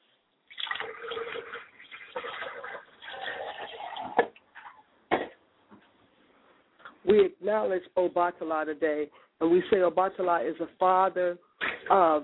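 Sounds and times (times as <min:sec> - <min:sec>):
liquid pouring and splashing as a ritual libation: 0:00.5 - 0:04.7
speech: 0:07.1 - 0:12.2.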